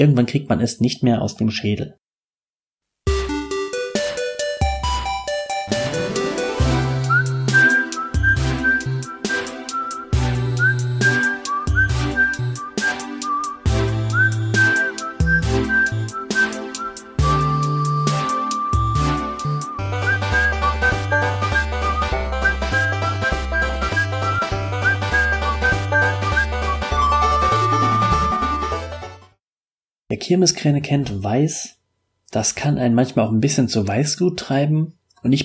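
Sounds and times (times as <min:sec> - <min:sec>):
speech: 0:00.0 - 0:02.0, 0:30.3 - 0:35.4
steady instrumental backing with bass and percussion: 0:03.1 - 0:29.4
whistled video game theme melody: 0:05.3 - 0:29.2.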